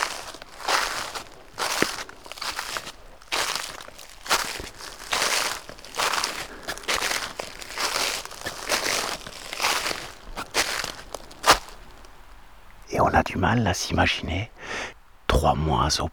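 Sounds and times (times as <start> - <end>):
footsteps crunching through thick dry dead leaves in the mountains: 0.0 - 12.6
speech: 13.0 - 16.1.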